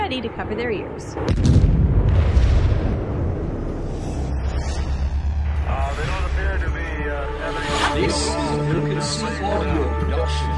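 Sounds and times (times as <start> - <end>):
speech: 0.1 - 2.5, 5.7 - 10.5
deep rumbling explosion booms: 1.2 - 4.4.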